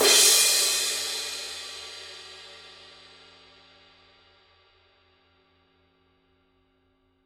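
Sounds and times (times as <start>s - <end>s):
Paiste 17 Dark Energy Mk I crash cymbal: 0.0s - 4.0s.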